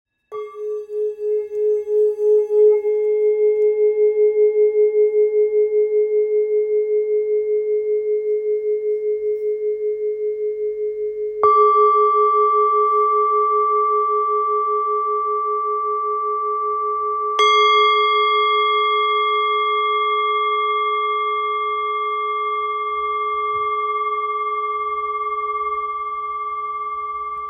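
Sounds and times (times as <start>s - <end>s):
old singing bowl tone in G sharp: 0.2s - 27.4s.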